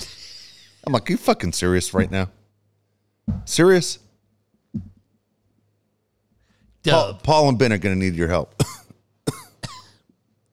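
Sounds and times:
speech: 0.8s - 2.4s, 3.5s - 4.0s, 6.8s - 8.7s
sharp raspy coughs: 8.6s - 10.0s.

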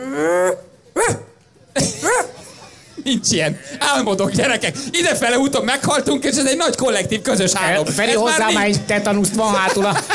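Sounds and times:
dog growling: 0.0s - 2.6s
laughter: 0.0s - 10.1s
female dog barking: 0.4s - 2.7s
speech: 3.1s - 10.1s.

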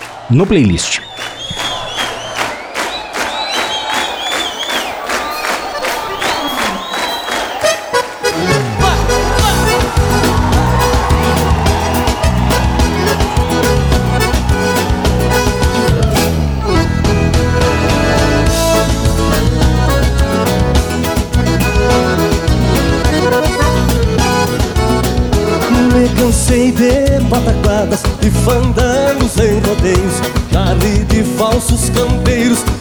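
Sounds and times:
crowd-like sounds: 0.0s - 27.1s
speech: 0.3s - 1.7s
full band with heavy bass and steady driving beat: 4.6s - 32.7s.

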